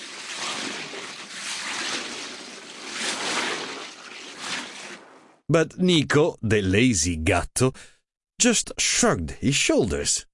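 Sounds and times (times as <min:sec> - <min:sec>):
elephant spraying water from its trunk: 0:00.0 - 0:05.3
speech: 0:05.5 - 0:10.3.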